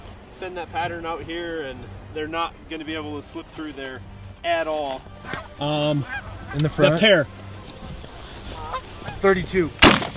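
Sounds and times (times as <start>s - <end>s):
speech: 0.4s - 7.4s, 9.2s - 10.0s
goose honking: 5.1s - 9.4s.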